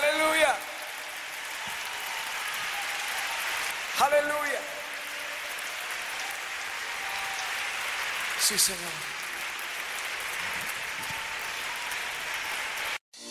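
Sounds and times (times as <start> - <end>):
congregation applauding: 0.0 - 13.0
speech: 4.0 - 4.8, 8.5 - 9.3.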